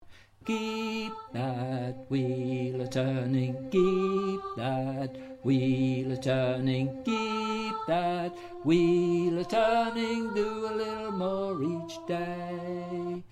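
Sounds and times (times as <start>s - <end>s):
alto choir voice: 0.4s - 13.2s.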